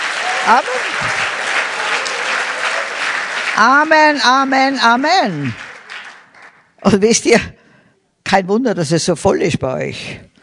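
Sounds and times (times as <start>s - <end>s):
church congregation applauding their pastor: 0.0s - 6.9s
speech: 0.5s - 1.3s, 3.6s - 5.6s, 6.8s - 7.6s, 8.3s - 10.3s.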